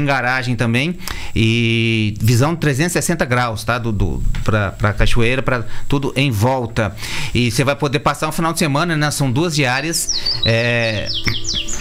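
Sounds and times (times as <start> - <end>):
speech: 0.0 - 11.7
small bird chirping: 9.9 - 11.7.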